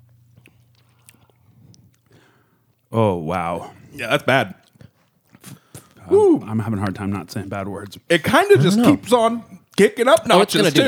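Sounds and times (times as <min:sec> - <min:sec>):
wet chewing of sticky candy: 0:00.0 - 0:02.9, 0:03.8 - 0:08.1
low steady hum: 0:00.0 - 0:05.0, 0:05.6 - 0:10.8
squishy mouth sounds: 0:00.2 - 0:02.9, 0:03.8 - 0:06.6
speech: 0:02.9 - 0:04.6, 0:06.1 - 0:10.8.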